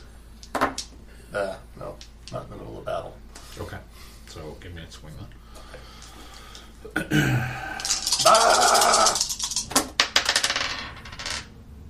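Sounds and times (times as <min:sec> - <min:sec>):
dice clattering and rolling across a hard surface: 0:00.4 - 0:00.9, 0:07.8 - 0:11.5
speech: 0:01.3 - 0:02.4, 0:04.6 - 0:05.4, 0:06.8 - 0:08.5.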